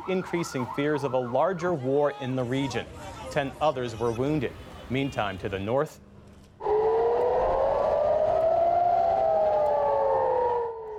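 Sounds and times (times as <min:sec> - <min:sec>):
air raid sirens wailing near a northern border during a drone barrage: 0:00.0 - 0:01.8, 0:06.6 - 0:10.9
speech: 0:00.0 - 0:06.0.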